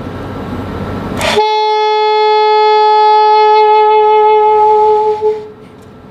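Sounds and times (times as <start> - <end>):
saxophone playing a sustained F note: 1.2 - 5.6.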